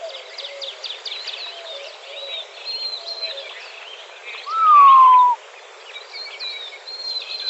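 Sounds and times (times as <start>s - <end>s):
high chirps of other birds: 4.4s - 5.4s
Montezuma quail drawn-out falling whistle in Arizona: 4.5s - 5.4s.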